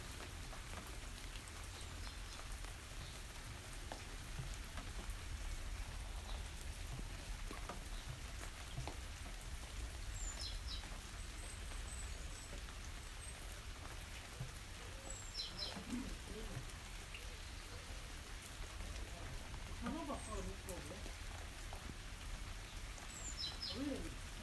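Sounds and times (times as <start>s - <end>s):
steady rain falling on forest trees: 0.0s - 24.4s
water drips: 0.0s - 24.4s.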